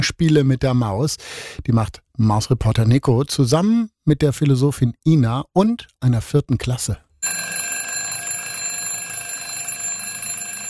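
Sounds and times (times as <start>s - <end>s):
speech: 0.0s - 7.7s
electronic alarm clock ringing: 7.2s - 10.6s.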